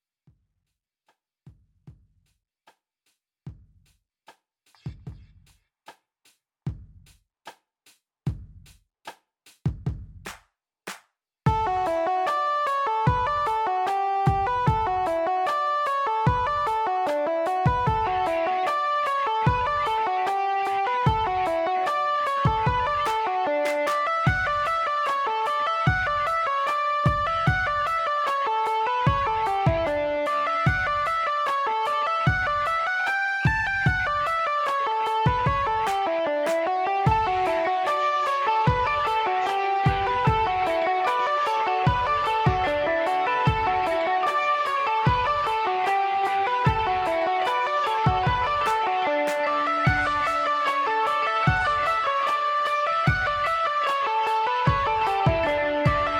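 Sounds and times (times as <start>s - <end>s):
mandolin playing a set of reels: 11.5s - 56.1s.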